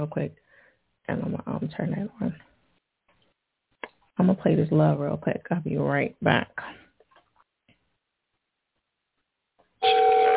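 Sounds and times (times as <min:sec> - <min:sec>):
speech: 0:00.0 - 0:02.5, 0:04.2 - 0:06.8
outgoing phone call ringback tone: 0:09.8 - 0:10.3.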